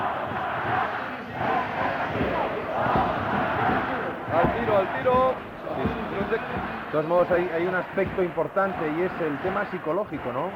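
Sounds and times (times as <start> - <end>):
large indoor basketball crowd chanting a song in unison: 0.0 - 10.5
speech: 6.3 - 10.5.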